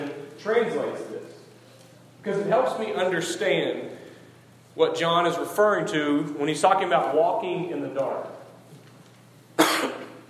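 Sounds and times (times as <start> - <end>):
speech: 0.4 - 1.4, 2.2 - 4.0, 4.8 - 8.4
sharp cough: 9.6 - 10.2.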